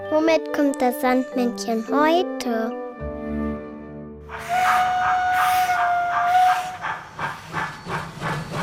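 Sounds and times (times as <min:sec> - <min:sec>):
speech: 0:00.1 - 0:02.8
steam locomotive whistle: 0:04.3 - 0:07.6
loud hiss of steam from a steam locomotive: 0:04.3 - 0:08.6.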